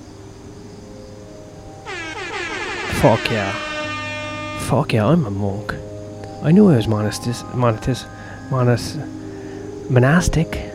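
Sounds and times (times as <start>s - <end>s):
short burst of noise: 1.9s - 4.8s
loud sustained air horn blast: 1.9s - 5.0s
speech: 3.0s - 3.7s, 4.6s - 9.2s, 9.9s - 10.7s.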